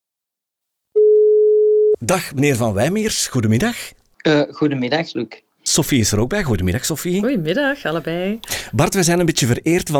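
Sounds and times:
telephone ringing tone while calling someone: 1.0s - 1.9s, 7.2s - 8.9s
speech: 2.0s - 9.9s.

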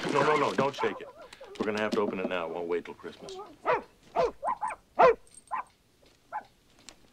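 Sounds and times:
speech: 0.1s - 5.2s
puppy yipping and barking: 0.6s - 1.6s, 3.3s - 5.7s, 6.3s - 6.5s
puppy whimpering: 0.6s - 1.7s, 3.2s - 5.6s.

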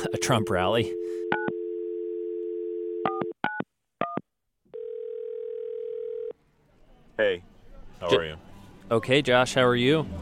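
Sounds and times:
telephone ringing tone on the line: 0.0s - 3.4s, 4.7s - 6.4s
speech: 0.1s - 1.5s, 7.2s - 10.1s
telephone dial tone: 0.8s - 3.4s, 4.0s - 6.3s.

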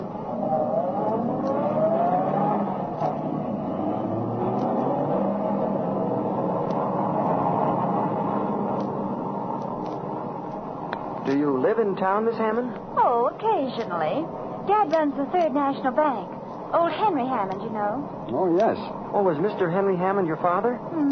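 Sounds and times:
car engine revving and pulling away: 0.0s - 11.1s
speech: 11.7s - 21.1s.

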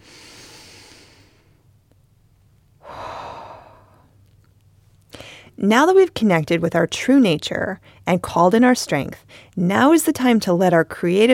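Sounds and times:
deep breath taken during a guided relaxation exercise: 0.0s - 1.6s, 2.8s - 4.2s, 5.1s - 5.6s
speech: 5.6s - 11.3s.

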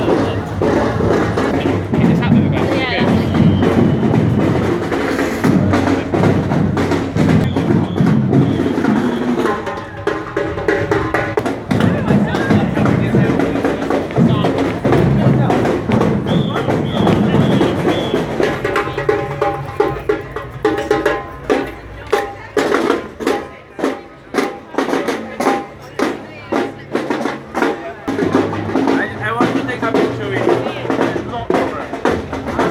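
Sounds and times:
dense steady wash of crowd voices at a seafront summer carnival: 0.0s - 32.6s
sharp regular carnival drum strikes: 0.0s - 32.6s.

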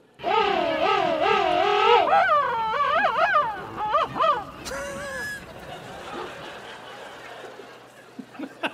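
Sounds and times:
Antarctic penguin braying trumpeting call: 0.2s - 5.5s
laughter: 3.1s - 8.7s.

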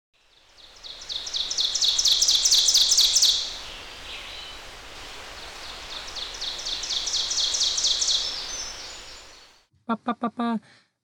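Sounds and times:
forest ambience hiss: 0.2s - 9.7s
ovenbird singing: 0.4s - 9.6s.

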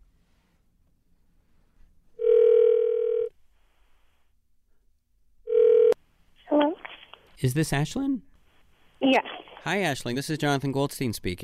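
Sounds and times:
electronic phone ringback tone: 2.2s - 3.3s, 5.5s - 6.0s
speech: 7.4s - 8.3s, 9.0s - 11.4s.

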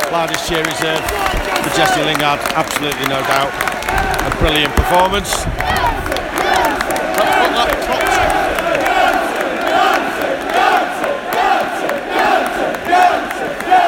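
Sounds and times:
speech: 0.1s - 6.1s
large stadium crowd singing and chanting in unison: 4.8s - 13.8s.

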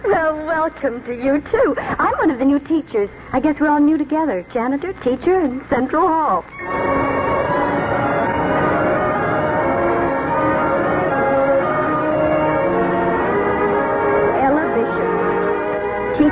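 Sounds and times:
speech: 0.7s - 7.0s
school bell ringing: 6.5s - 16.3s.

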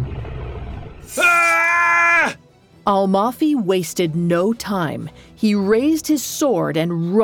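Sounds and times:
monster's thunderous roar with a harsh screeching edge: 1.1s - 2.4s
speech: 2.9s - 7.2s.

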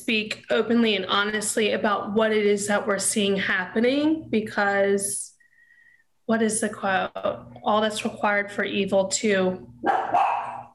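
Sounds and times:
speech: 0.0s - 5.3s, 6.3s - 10.4s
dog barking: 9.8s - 10.7s.

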